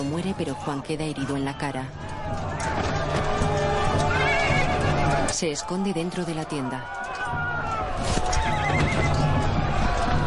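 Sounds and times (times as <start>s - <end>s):
speech: 0.0s - 3.4s, 5.3s - 7.4s
constant commotion: 0.0s - 10.2s
hooves clopping: 1.6s - 10.2s
horse whinnying: 8.3s - 9.2s.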